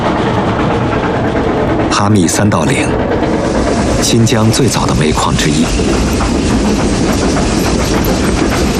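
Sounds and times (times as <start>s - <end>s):
steam locomotive running on rails: 0.0s - 8.7s
speech: 2.0s - 3.2s, 4.0s - 8.7s
locomotive wheels clattering on rails: 3.2s - 8.7s.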